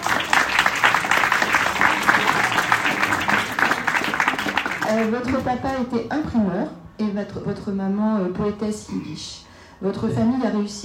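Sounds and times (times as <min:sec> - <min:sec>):
audience applause at a talk before a book signing: 0:00.0 - 0:05.2
speech: 0:04.9 - 0:10.8.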